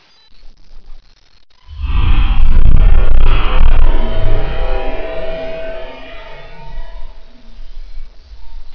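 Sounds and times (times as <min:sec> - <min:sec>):
ambient music: 0:01.8 - 0:08.7.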